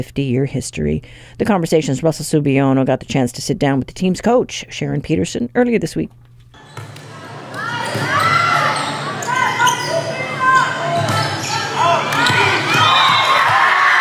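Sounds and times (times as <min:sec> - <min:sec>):
speech: 0:00.0 - 0:06.2
high school volleyball team girls cheering after a win: 0:07.4 - 0:13.9.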